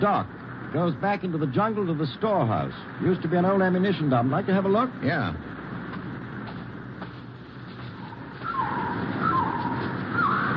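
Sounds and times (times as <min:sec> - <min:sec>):
speech: 0:00.0 - 0:05.5
rushing noise: 0:00.0 - 0:10.5
man imitating a bird call with warbling whistles: 0:08.0 - 0:10.5.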